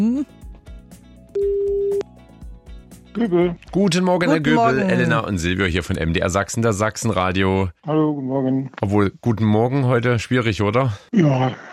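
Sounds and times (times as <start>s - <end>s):
soft music bed: 0.0s - 10.6s
outgoing phone line ringing tone: 1.4s - 2.0s
speech: 3.2s - 11.7s.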